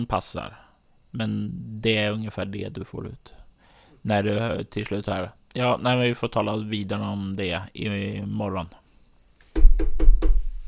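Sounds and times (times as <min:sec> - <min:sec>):
speech: 0:00.0 - 0:03.4, 0:04.0 - 0:08.8, 0:09.6 - 0:10.3
firm knocks on a wooden door: 0:09.6 - 0:10.6.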